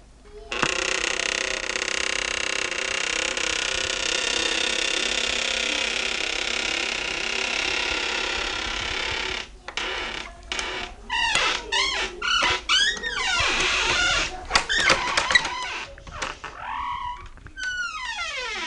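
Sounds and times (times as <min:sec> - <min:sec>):
door creaking open: 0:00.4 - 0:18.6.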